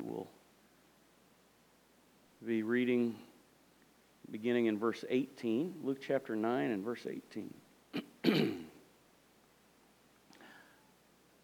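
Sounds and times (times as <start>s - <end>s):
speech: 2.4s - 3.3s, 4.3s - 8.5s
harsh throat clearing caused by bits of donut in the throat: 7.9s - 8.8s.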